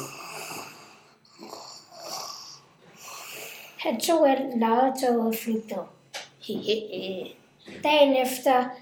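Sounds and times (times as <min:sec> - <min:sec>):
person snoring: 0:00.0 - 0:03.8
speech: 0:03.8 - 0:08.8.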